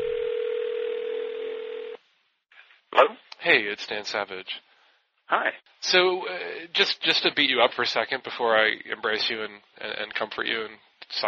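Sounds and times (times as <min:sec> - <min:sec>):
steady continuous telephone dial tone: 0:00.0 - 0:02.0
speech: 0:03.0 - 0:04.7, 0:05.3 - 0:11.2.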